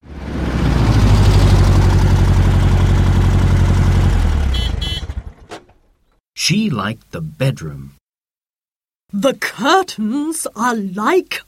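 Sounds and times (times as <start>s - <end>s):
car engine idling loudly: 0.6s - 5.6s
speech: 6.5s - 8.0s, 9.1s - 11.4s.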